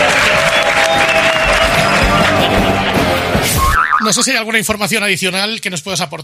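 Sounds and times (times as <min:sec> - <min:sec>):
faint cheers: 0:00.0 - 0:03.1
crowd applauding: 0:00.0 - 0:03.9
speech: 0:04.1 - 0:06.2.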